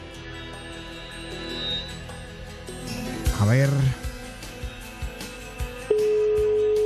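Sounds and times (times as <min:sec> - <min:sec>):
speech: 0:03.4 - 0:04.0
phone keypad beeps: 0:05.9 - 0:06.8
steady telephone tone: 0:05.9 - 0:06.8.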